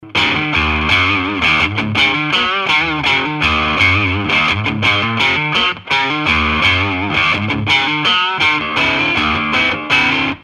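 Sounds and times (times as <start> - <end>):
electric guitar with neck and bridge pickup overdrive: 0.0 - 10.4.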